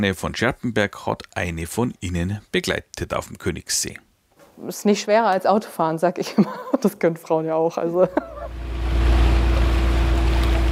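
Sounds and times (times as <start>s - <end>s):
speech: 0.0s - 8.3s
laughter: 6.2s - 6.9s, 7.9s - 8.6s
small passenger boat motor droning leaving a boathouse on a lake: 8.4s - 10.7s.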